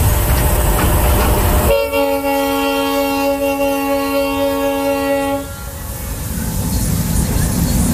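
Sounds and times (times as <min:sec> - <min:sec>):
passenger train running on rails: 0:00.0 - 0:07.9
train horn blast: 0:01.6 - 0:05.9.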